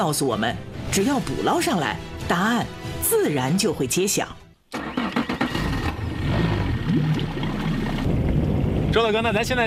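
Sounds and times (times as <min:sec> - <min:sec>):
speech: 0:00.0 - 0:04.4, 0:09.0 - 0:09.6
water splashing against speedboat: 0:04.8 - 0:09.2.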